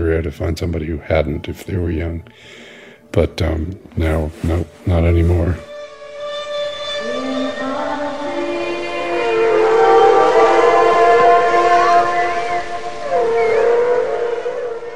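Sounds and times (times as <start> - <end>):
speech: 0.1 - 5.7
whale song: 5.6 - 14.9.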